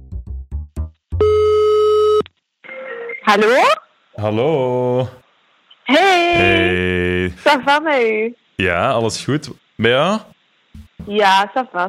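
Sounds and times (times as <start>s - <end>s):
telephone ringback tone: 1.2s - 2.2s
speech: 3.3s - 5.2s, 5.9s - 10.3s, 11.1s - 11.8s.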